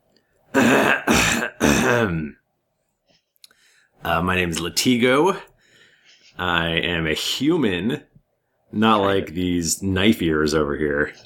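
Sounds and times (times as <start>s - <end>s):
person clearing throat loudly: 0.5s - 2.4s
speech: 1.9s - 2.4s, 4.0s - 5.5s, 6.4s - 8.1s, 8.7s - 11.2s.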